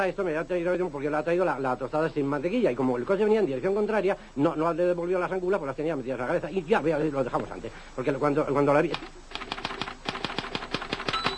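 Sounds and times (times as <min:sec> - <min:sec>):
speech: 0:00.0 - 0:09.2
typewriter typing: 0:08.9 - 0:11.3.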